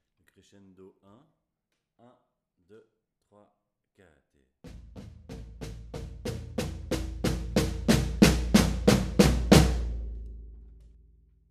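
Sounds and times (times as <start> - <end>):
batucada drumming: 4.7 - 10.6.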